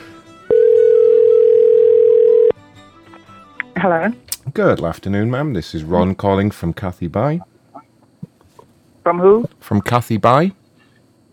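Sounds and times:
telephone dial tone before a call is placed: 0.5 - 2.5
speech: 3.8 - 7.5, 9.0 - 10.6.

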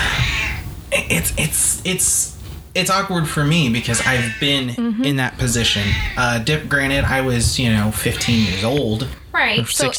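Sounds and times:
cat screaming: 0.0 - 0.8, 3.5 - 4.6, 5.5 - 9.2
speech: 1.1 - 9.9.

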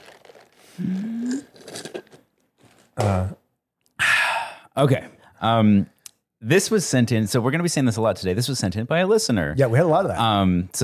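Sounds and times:
slurping the last of a drink: 0.0 - 3.0
speech: 0.8 - 1.6, 4.8 - 10.8.

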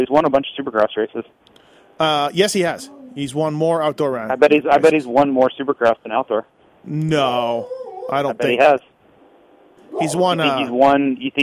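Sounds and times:
speech: 0.0 - 8.9, 9.9 - 11.4
dog barking in long drawn-out howling bursts: 9.8 - 10.7.

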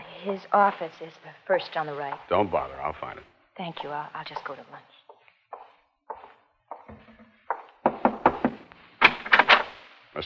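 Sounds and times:
speech: 0.2 - 5.0
knocking on a wooden office door: 6.9 - 8.6.

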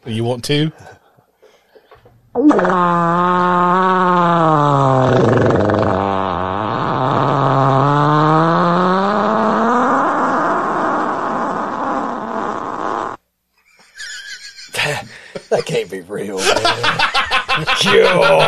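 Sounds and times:
speech: 0.1 - 1.0, 2.4 - 6.0, 17.8 - 18.4
long loud fart from a played recording: 2.3 - 13.2
laughter: 13.8 - 18.4.

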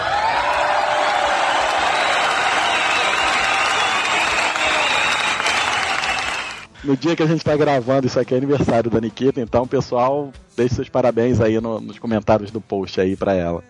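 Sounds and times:
dense applause from a small group: 0.0 - 6.7
faint whoops: 0.0 - 6.7
speech: 6.8 - 13.6.

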